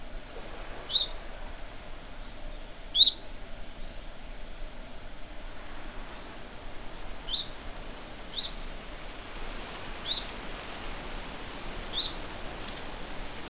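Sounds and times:
faint constant noise: 0.0 - 13.4
house sparrow Passer domesticus chirping: 6.1 - 13.0.

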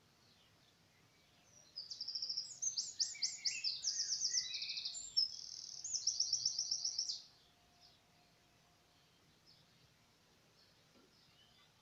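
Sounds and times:
faint background hiss: 0.0 - 11.8
Eurasian wren Troglodytes troglodytes singing high fast trills and rattling notes: 1.5 - 7.3.

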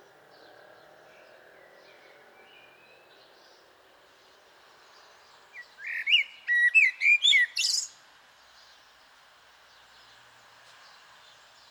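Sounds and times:
common blackbird Turdus merula whistling fluty notes: 5.8 - 7.9.

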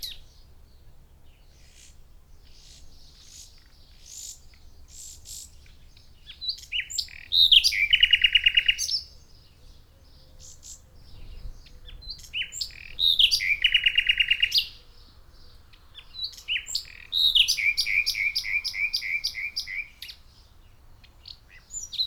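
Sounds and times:
Common nightingale Luscinia megarhynchos song: 0.0 - 22.0.

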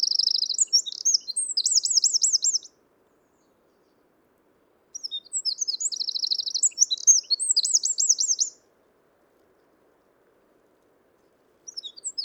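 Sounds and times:
Eurasian wren Troglodytes troglodytes delivering energetic high trilled song: 0.0 - 2.7, 5.0 - 8.6, 11.7 - 12.2.

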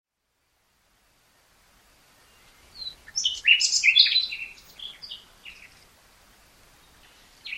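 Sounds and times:
faint background noise: 0.1 - 7.5
common nightingale Luscinia megarhynchos singing: 2.1 - 6.0, 6.7 - 7.5.

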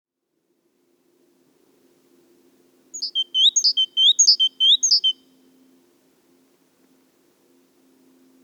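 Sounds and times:
great tit Parus major calling: 3.0 - 5.2.

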